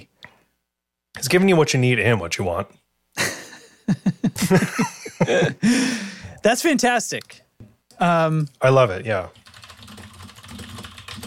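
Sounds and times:
speech: 0:01.2 - 0:02.8, 0:03.9 - 0:07.4, 0:08.0 - 0:09.4
laughter: 0:03.2 - 0:05.8
typing on a loud computer keyboard at a desk: 0:09.4 - 0:11.2.

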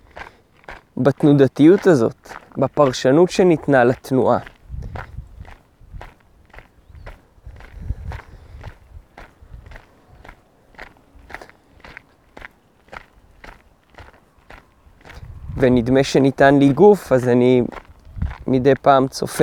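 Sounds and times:
footsteps walking along a path: 0:00.0 - 0:19.4
speech: 0:01.0 - 0:04.5, 0:15.6 - 0:17.8, 0:18.5 - 0:19.4.

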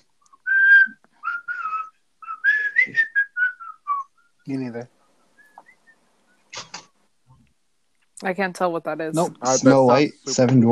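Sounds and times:
person whistling a cheerful tune: 0:00.3 - 0:04.4
speech: 0:04.5 - 0:05.0, 0:08.2 - 0:10.6.

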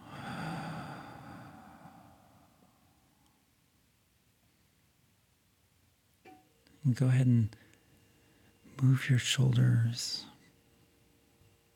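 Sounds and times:
deep breath in through the nose and out through the mouth: 0:00.0 - 0:03.2
speech: 0:06.8 - 0:07.6, 0:08.8 - 0:10.3.

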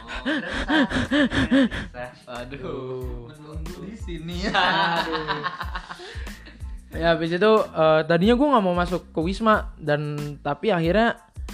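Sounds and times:
laughter: 0:00.0 - 0:01.9, 0:04.3 - 0:06.6
voice imitating labored uneasy breathing with voiced gasps: 0:00.0 - 0:02.0
speech: 0:00.2 - 0:11.5.

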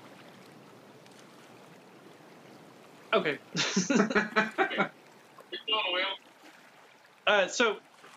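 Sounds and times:
speech: 0:03.1 - 0:05.0, 0:07.3 - 0:07.9
laughter: 0:03.6 - 0:04.9
voice imitating a boat propeller: 0:04.4 - 0:04.9, 0:05.6 - 0:06.2.

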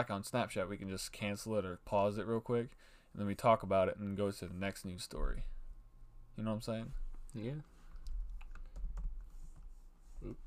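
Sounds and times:
speech: 0:00.0 - 0:05.6, 0:06.4 - 0:07.7, 0:10.2 - 0:10.4
typing on a computer keyboard: 0:08.0 - 0:09.2.

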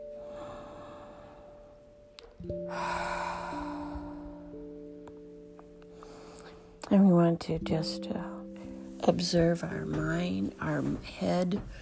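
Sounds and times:
steady low tones: 0:00.0 - 0:11.7
slow breath during a guided meditation: 0:00.1 - 0:01.9, 0:02.5 - 0:05.0, 0:05.8 - 0:06.8
speech: 0:02.4 - 0:03.0, 0:06.9 - 0:08.3, 0:09.0 - 0:11.7.

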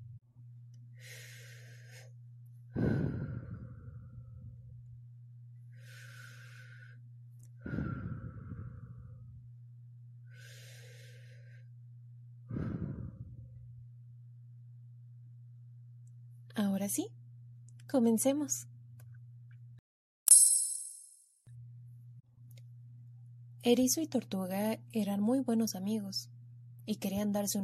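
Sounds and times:
steady low hum: 0:00.0 - 0:19.8, 0:21.4 - 0:27.6
slow deep breaths with long audible exhales: 0:00.9 - 0:04.8, 0:05.6 - 0:09.5, 0:10.2 - 0:13.7
speech: 0:16.8 - 0:17.2, 0:17.9 - 0:18.7, 0:23.7 - 0:27.6.

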